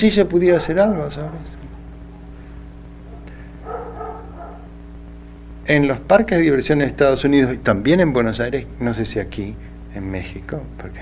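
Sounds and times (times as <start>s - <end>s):
speech: 0.0s - 1.6s, 5.7s - 11.0s
steady low hum: 0.0s - 11.0s
dog barking with short yappy barks: 1.0s - 2.4s, 3.0s - 4.8s.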